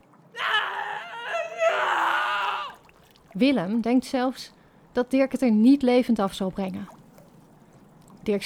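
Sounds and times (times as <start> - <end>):
man screaming in pain while being beaten: 0.4 - 2.8
speech: 3.4 - 7.0, 8.2 - 8.4.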